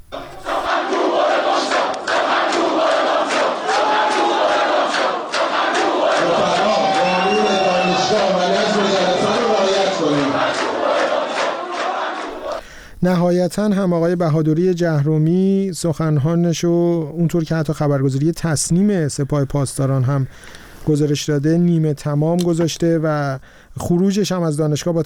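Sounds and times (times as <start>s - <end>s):
university students protesting chanting and shouting together: 0.0s - 12.6s
speech: 13.0s - 25.0s.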